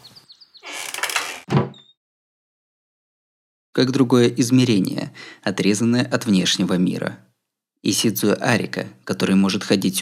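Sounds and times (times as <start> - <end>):
faint high squeaks: 0.0 - 1.9
door being pushed shut: 0.6 - 1.8
speech: 3.8 - 10.0.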